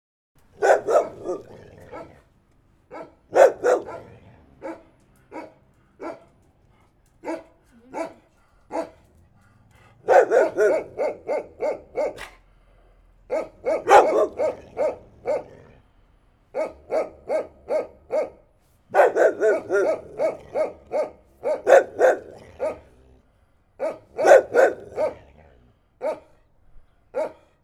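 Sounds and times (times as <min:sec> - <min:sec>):
dog barking: 0:00.5 - 0:02.3, 0:02.9 - 0:06.4, 0:07.2 - 0:09.1, 0:10.0 - 0:12.5, 0:13.3 - 0:15.8, 0:16.5 - 0:23.0, 0:23.8 - 0:26.4, 0:27.1 - 0:27.6.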